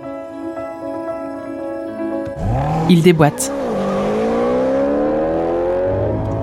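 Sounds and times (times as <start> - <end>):
sports car engine accelerating hard at a red light: 2.4 - 2.9, 3.5 - 6.4
speech: 2.5 - 3.7.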